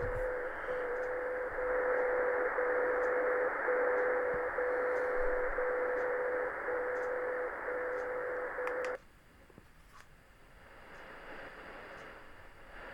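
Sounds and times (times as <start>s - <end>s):
hissy static from a shortwave radio receiver in sideband mode: 0.0s - 9.0s, 10.6s - 12.9s
hiss: 0.0s - 12.9s.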